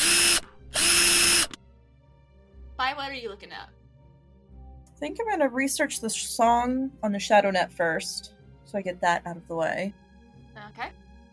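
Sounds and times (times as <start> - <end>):
power drill whirring: 0.0 - 1.6
speech: 2.8 - 3.8, 5.0 - 10.0, 10.6 - 11.0.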